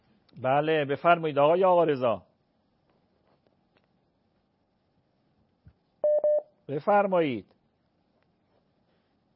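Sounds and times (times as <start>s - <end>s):
speech: 0.4s - 2.3s, 6.7s - 7.6s
telephone line beeping as a call connects: 6.0s - 6.4s.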